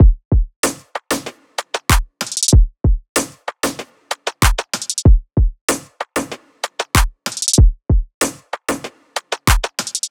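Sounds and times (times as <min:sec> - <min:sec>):
full drum loop: 0:00.0 - 0:10.0.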